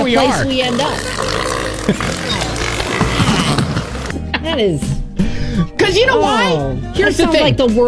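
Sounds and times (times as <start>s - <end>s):
sea lions grunting and bellowing while mating: 0.0s - 4.1s
speech: 0.1s - 2.5s, 4.4s - 7.8s.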